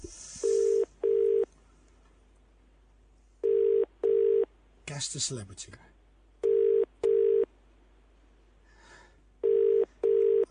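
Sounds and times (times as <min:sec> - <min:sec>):
telephone ringing tone heard down the line: 0:00.4 - 0:01.5, 0:03.4 - 0:04.5, 0:06.4 - 0:07.5, 0:09.4 - 0:10.5
speech: 0:05.0 - 0:06.0.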